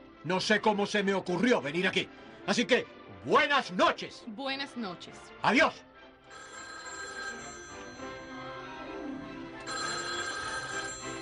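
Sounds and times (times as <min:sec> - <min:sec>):
speech: 0:00.2 - 0:06.5
telephone bell ringing with a bright metallic trill: 0:06.3 - 0:11.2.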